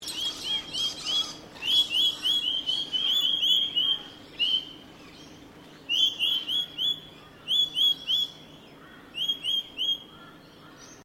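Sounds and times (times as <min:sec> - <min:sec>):
bird chirps in Australia: 0:00.0 - 0:11.0
faint steady hum: 0:00.0 - 0:11.0.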